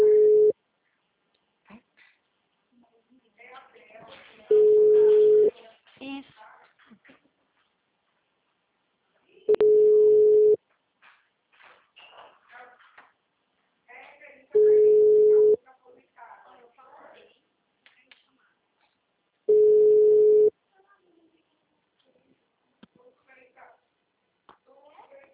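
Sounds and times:
telephone busy tone after a dropped call: 0:00.0 - 0:00.5, 0:04.5 - 0:05.5, 0:09.5 - 0:10.6, 0:14.6 - 0:15.6, 0:19.5 - 0:20.5.

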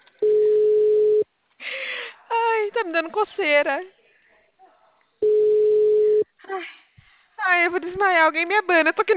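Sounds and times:
telephone ringback tone while someone places a call: 0:00.2 - 0:01.2, 0:05.2 - 0:06.3
speech: 0:03.0 - 0:03.9, 0:07.6 - 0:09.1.

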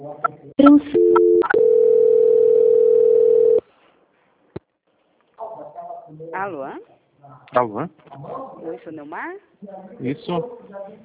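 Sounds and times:
speech: 0:00.0 - 0:01.0, 0:07.5 - 0:11.0
long steady mid-pitched telephone line tone during a call transfer: 0:00.6 - 0:03.6.

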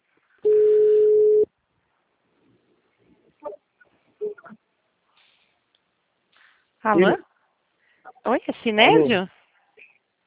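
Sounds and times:
telephone ringback tone: 0:00.5 - 0:01.4
speech: 0:06.8 - 0:07.3, 0:08.2 - 0:09.4.

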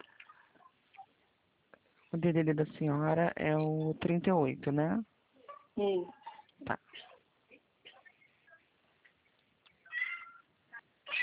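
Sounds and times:
speech: 0:02.1 - 0:05.1, 0:05.8 - 0:06.8
cat meowing over a phone line: 0:09.9 - 0:10.5.

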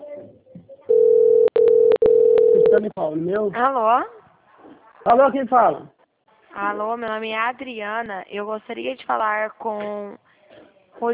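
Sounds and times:
telephone ringback tone on a call: 0:00.9 - 0:02.8
speech: 0:02.8 - 0:04.2, 0:05.0 - 0:06.0, 0:06.6 - 0:10.3, 0:11.0 - 0:11.1.

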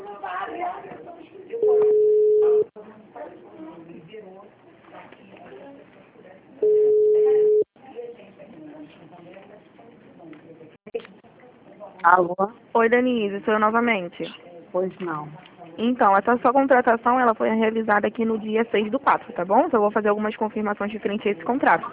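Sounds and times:
voices: 0:00.0 - 0:21.9
ringback tones from an outgoing telephone call: 0:01.6 - 0:02.7, 0:06.6 - 0:07.6
speech: 0:12.0 - 0:21.9.

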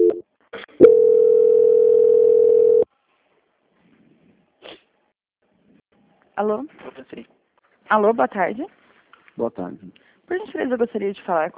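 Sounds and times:
steady low-pitched telephone line tone during a call transfer: 0:00.8 - 0:02.9
speech: 0:06.4 - 0:08.8, 0:09.4 - 0:11.5.

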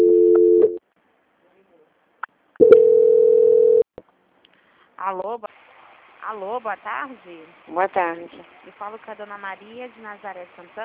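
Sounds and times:
telephone line tone during a call transfer on a bank call: 0:00.0 - 0:00.8, 0:02.6 - 0:03.8
speech: 0:05.0 - 0:05.6, 0:06.3 - 0:10.8.

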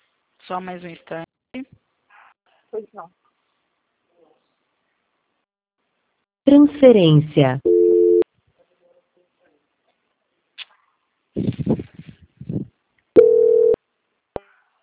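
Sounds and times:
speech: 0:00.5 - 0:01.7, 0:02.7 - 0:03.2, 0:06.5 - 0:07.8
telephone busy-signal tones: 0:07.6 - 0:08.2, 0:13.2 - 0:13.8.

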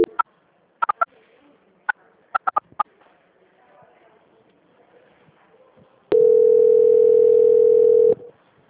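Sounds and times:
short sharp clicks and beeps: 0:00.0 - 0:00.2
telephone ringing tone during call transfer: 0:06.1 - 0:08.3.

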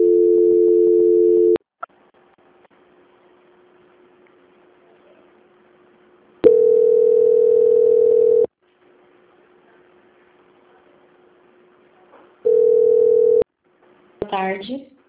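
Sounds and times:
steady telephone line tone during a call transfer: 0:00.0 - 0:01.6, 0:06.4 - 0:08.5, 0:12.5 - 0:13.4.

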